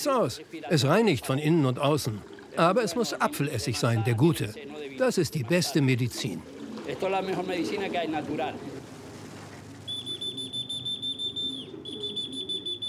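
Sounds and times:
speech: 0.0 - 8.9
piercing high whistle to call trained pigeons: 9.9 - 12.8.

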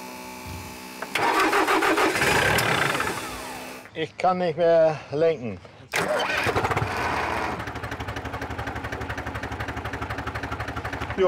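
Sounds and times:
tractor engine cranking and starting: 1.0 - 3.9, 5.9 - 11.2
speech: 4.0 - 6.6.

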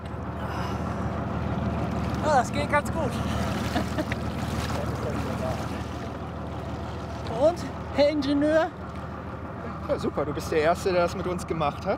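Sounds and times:
wind: 0.0 - 11.9
water splashing as a person climbs from water into a boat: 0.3 - 9.1
speech: 2.3 - 4.2, 7.4 - 8.8, 9.9 - 11.9.

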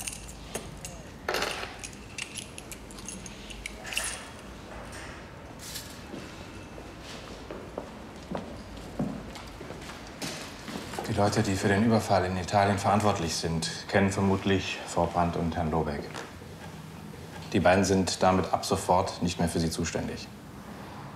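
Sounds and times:
bunch of keys jangling and clinking: 0.0 - 4.6
speech: 11.2 - 16.2, 17.5 - 20.4.

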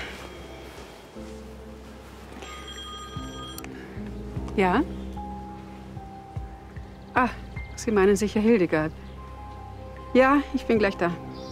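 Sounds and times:
telephone ringing: 2.4 - 3.7
speech: 4.6 - 5.0, 7.2 - 9.0, 10.1 - 11.3.

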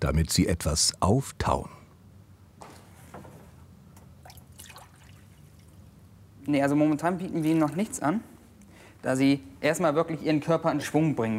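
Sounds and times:
speech: 0.0 - 1.8, 6.4 - 8.3, 9.0 - 11.3
water from a cold shower trickling and splashing: 4.2 - 5.8.

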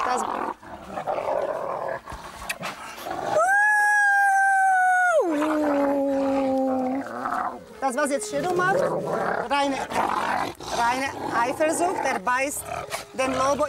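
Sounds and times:
wolves growling and snarling: 0.0 - 3.4, 5.2 - 13.6
wolf whining howl: 3.2 - 8.8
speech: 8.0 - 13.6.

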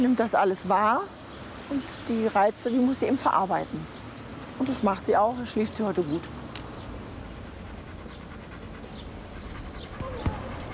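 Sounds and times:
speech: 0.0 - 4.0, 4.6 - 6.4
dog panting heavily: 6.8 - 10.7.

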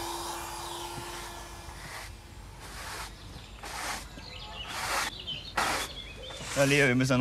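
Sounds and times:
vacuum cleaner running: 0.0 - 2.1
speech: 6.6 - 7.1.

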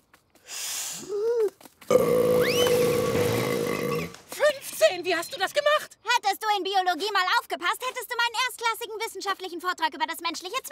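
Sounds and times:
loud drawn-out deliberate burp with warbling croaking tone: 1.9 - 4.1
shorter gulping belch: 1.9 - 4.1
speech: 5.1 - 5.9, 6.5 - 10.6.

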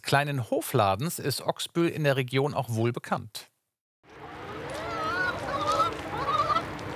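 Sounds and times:
speech: 0.1 - 3.5
chickens clucking on a farm in Ochsbüll near Flensburg Germany: 4.2 - 6.9.

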